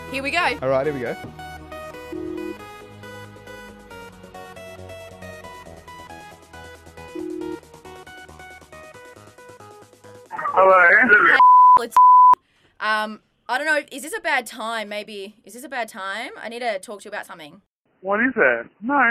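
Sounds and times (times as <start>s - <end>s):
speech: 0.1s - 1.4s, 10.6s - 12.0s, 12.8s - 19.0s
bright melodic phone ringtone on an outgoing call: 2.1s - 2.6s, 7.2s - 7.6s
laughter: 10.4s - 11.4s.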